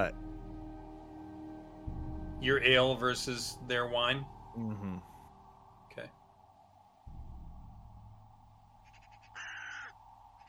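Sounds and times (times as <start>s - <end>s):
speech: 0.0s - 0.2s, 2.4s - 5.1s, 6.0s - 6.2s
low rumble: 0.0s - 10.4s
raven calling from the trees: 8.6s - 10.4s.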